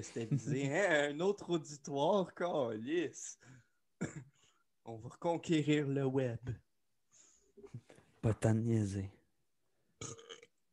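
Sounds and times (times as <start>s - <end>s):
laughter: 0.0s - 1.0s
speech: 0.0s - 6.6s, 7.6s - 9.2s, 10.0s - 10.3s
loud deep rumbling burp: 10.0s - 10.6s.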